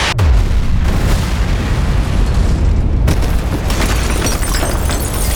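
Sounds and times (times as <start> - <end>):
port explosion: 0.2 - 5.2.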